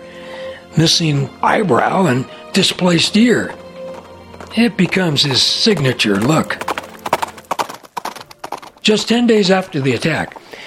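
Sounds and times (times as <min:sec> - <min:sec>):
speech: 0:00.8 - 0:03.6, 0:04.5 - 0:06.7, 0:08.8 - 0:10.6
horse hooves clip-clopping at a walking pace as a rider heads off: 0:02.6 - 0:10.6.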